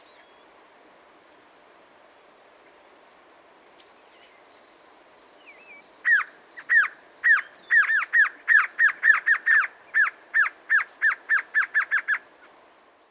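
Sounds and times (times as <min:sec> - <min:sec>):
glossy antshrike Sakesphorus luctuosus luctuosus calling in down-curving notes: 0:05.4 - 0:12.4.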